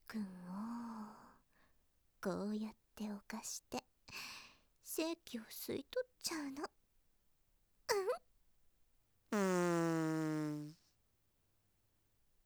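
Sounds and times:
speech: 0.1s - 0.5s, 2.2s - 4.3s, 4.9s - 6.8s
farts: 9.3s - 10.8s.

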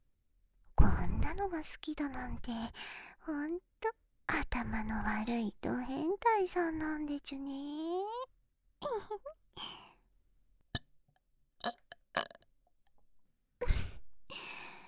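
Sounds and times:
speech: 1.3s - 8.0s, 8.8s - 9.8s
long deep rumbling belch: 11.6s - 12.4s
person burping: 11.6s - 12.4s.

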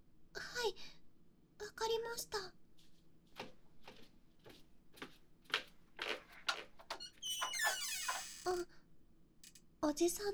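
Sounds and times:
speech: 1.9s - 2.6s, 8.5s - 8.8s, 9.8s - 10.3s
soft footsteps: 2.7s - 8.6s
creaking hinge of a door behind a shop counter: 6.1s - 8.6s.

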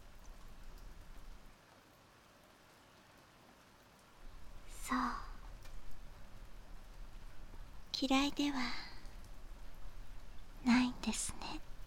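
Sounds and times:
steady rain falling: 0.0s - 11.8s
speech: 8.0s - 8.8s, 11.1s - 11.6s.

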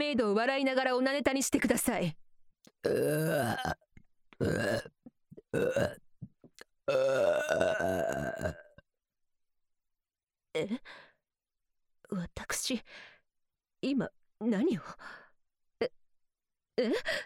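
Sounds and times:
speech: 0.0s - 2.2s, 2.8s - 3.8s, 4.4s - 6.0s, 6.9s - 8.6s, 10.6s - 11.0s, 12.1s - 13.1s, 13.8s - 15.2s, 16.8s - 17.2s
loud drawn-out burps: 2.8s - 6.0s, 6.8s - 8.8s.

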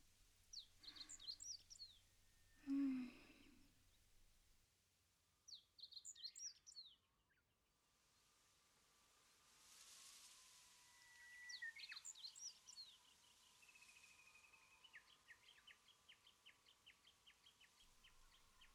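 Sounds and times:
small birds twittering at a campsite: 0.0s - 4.0s, 5.4s - 7.4s, 11.4s - 18.7s.

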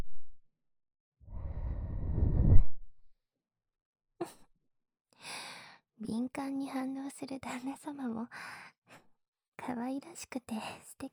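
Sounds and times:
soft breathy blowing into an ear to cool it: 1.4s - 2.8s
speech: 6.0s - 8.7s, 9.7s - 11.1s.

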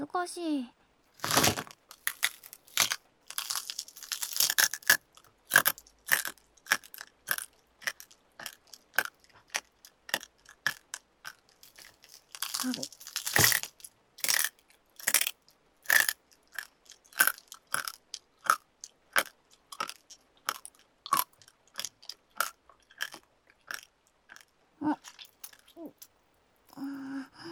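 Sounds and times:
crunchy chewing and biting of food containing small bones: 1.2s - 26.9s.

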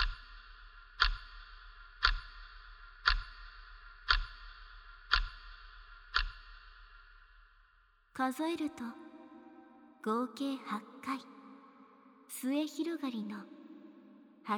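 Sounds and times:
clock second hand ticking: 0.0s - 7.2s
speech: 8.2s - 9.0s, 10.0s - 11.4s, 12.3s - 13.6s.

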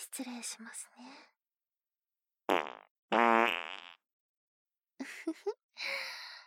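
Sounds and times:
speech: 0.0s - 1.4s, 5.2s - 6.1s
mouth-made fart sounds: 2.5s - 4.0s.

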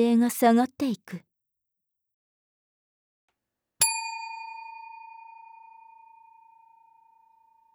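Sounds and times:
speech: 0.0s - 1.3s
single bell strike ringing: 3.8s - 7.7s.

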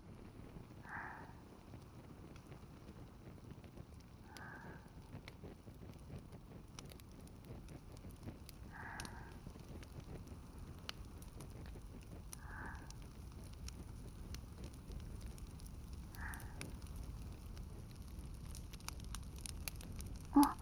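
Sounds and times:
firewood crackling in a fireplace: 0.1s - 20.6s.

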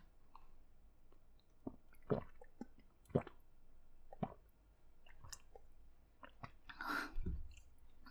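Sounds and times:
person drinking water with gulps and swallows: 1.5s - 3.4s, 4.1s - 7.6s.

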